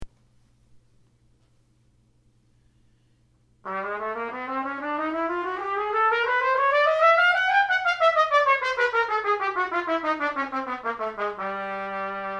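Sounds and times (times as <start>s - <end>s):
trumpet playing a chromatic scale: 3.6s - 12.3s.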